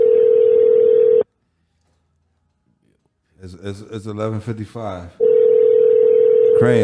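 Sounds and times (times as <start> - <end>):
telephone tone as a phone call is placed: 0.0 - 1.2, 5.2 - 6.8
speech: 3.4 - 5.2, 6.6 - 6.8.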